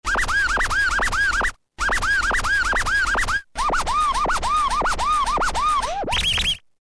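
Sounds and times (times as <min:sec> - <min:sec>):
scratch loop from Roland M-DC1 module: 0:00.0 - 0:06.6.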